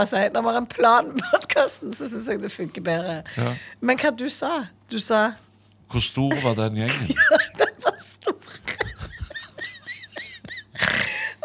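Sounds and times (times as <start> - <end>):
speech: 0.0 - 7.4
laughter: 6.3 - 11.4
person making exaggerated snoring noises: 10.8 - 11.4.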